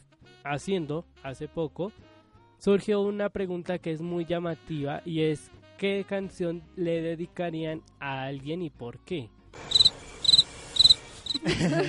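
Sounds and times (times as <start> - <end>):
speech: 0.4 - 9.7, 11.4 - 11.8
cricket chirping: 9.7 - 11.4
laughter: 11.3 - 11.8.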